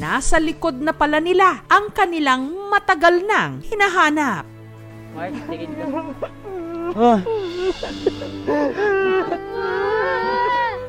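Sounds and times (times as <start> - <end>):
speech: 0.0 - 4.5, 5.2 - 9.8
child sobbing and wailing: 6.1 - 10.8.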